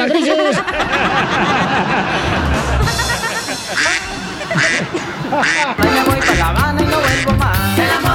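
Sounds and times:
laughter: 0.0s - 8.0s
ducks quacking: 3.6s - 7.7s
speech: 5.3s - 8.0s.

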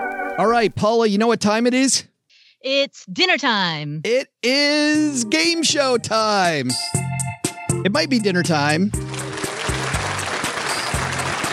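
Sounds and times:
speech: 0.4s - 7.1s, 7.8s - 9.2s
crowd cheering and clapping: 9.0s - 11.5s.

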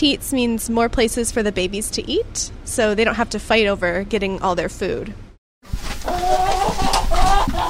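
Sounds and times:
speech: 0.0s - 7.6s
hens clucking in a chicken coop: 5.8s - 7.6s
hens squawking: 6.0s - 7.6s.

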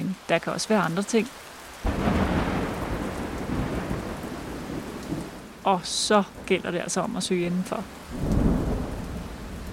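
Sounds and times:
heavy rain downpour: 0.0s - 9.7s
speech: 0.3s - 2.1s, 5.6s - 8.4s
thunder rumbling from a cumulonimbus cloud: 1.8s - 5.6s, 8.0s - 9.7s.

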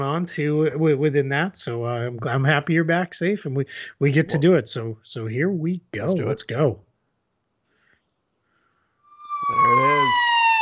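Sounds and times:
speech: 0.1s - 6.9s
police siren: 9.0s - 10.6s.

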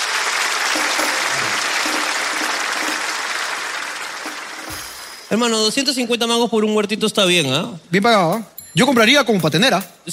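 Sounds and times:
sustained applause from a sizable audience: 0.0s - 5.4s
speech: 5.3s - 10.1s.

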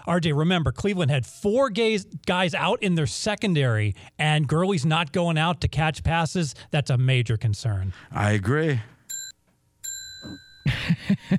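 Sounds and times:
speech: 0.0s - 8.9s, 10.2s - 11.3s
bright victory bell dinging: 9.1s - 10.8s.

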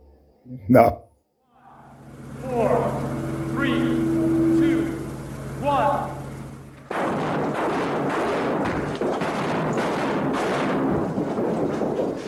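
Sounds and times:
speech: 0.4s - 1.0s
flashbangs going off: 1.8s - 12.2s
debris crashing: 6.2s - 12.2s.

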